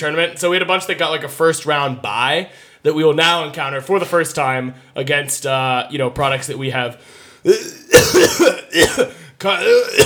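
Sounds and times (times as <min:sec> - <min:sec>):
speech: 0:00.0 - 0:10.0
person coughing harshly with a developing cough: 0:07.5 - 0:10.0.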